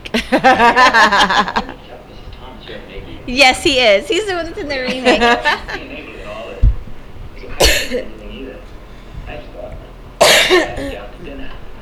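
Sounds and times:
laughter: 0.0 - 1.9, 3.9 - 6.6
speech: 0.3 - 1.8, 2.7 - 5.9, 7.8 - 8.2, 10.5 - 11.0
sharp harsh coughs: 7.6 - 8.2, 10.2 - 11.2.

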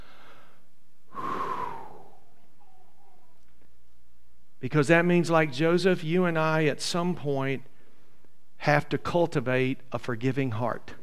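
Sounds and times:
deep breath: 0.0 - 3.1
speech: 4.6 - 7.7, 8.6 - 11.0.

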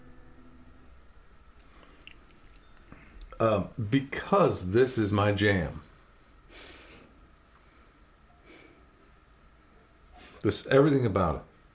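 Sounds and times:
faint hum: 0.0 - 11.7
person sipping and tasting whiskey: 1.6 - 3.4
speech: 3.4 - 5.8, 10.4 - 11.5.

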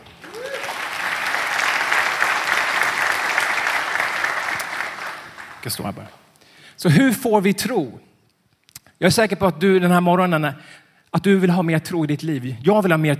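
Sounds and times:
sustained audience applause: 0.0 - 5.9
speech: 5.6 - 6.2, 6.8 - 8.1, 9.0 - 13.1.

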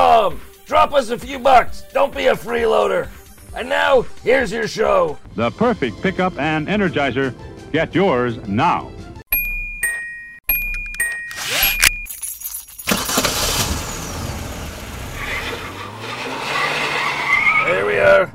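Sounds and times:
speech: 0.3 - 9.0
short chiming tones: 9.3 - 12.7
car engine roaring with road noise: 12.9 - 18.3
car tires squealing and skidding: 12.9 - 18.3.

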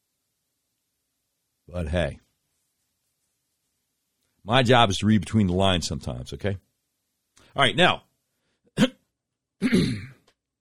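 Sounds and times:
speech: 1.7 - 2.2, 4.4 - 6.6, 7.6 - 8.1, 9.6 - 10.1
longer rough throat clearing: 8.8 - 10.3
short sharp cough: 9.6 - 10.3.

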